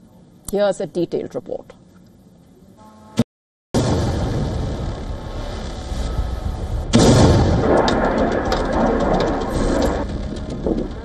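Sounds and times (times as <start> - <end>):
speech: 0.5 - 1.8
heavy rumbling explosions during drone and missile attack: 3.8 - 11.0.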